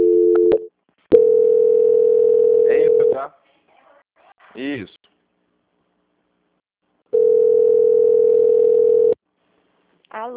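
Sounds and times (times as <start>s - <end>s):
steady mid-pitched telephone tone on a line during a call transfer: 0.0s - 3.1s, 7.1s - 9.2s
speech: 4.6s - 5.0s, 10.2s - 10.3s.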